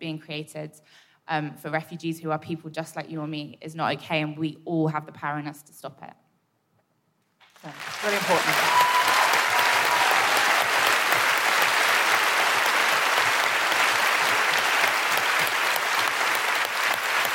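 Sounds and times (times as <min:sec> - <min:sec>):
speech: 0:00.0 - 0:06.2, 0:07.6 - 0:08.9
audience applause: 0:07.4 - 0:17.3.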